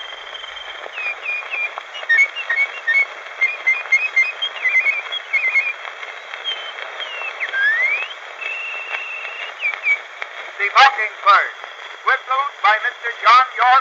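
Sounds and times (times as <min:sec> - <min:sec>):
artistic whistling imitating birdsong on an old recording: 0:00.0 - 0:10.1
old recording hiss: 0:00.0 - 0:13.7.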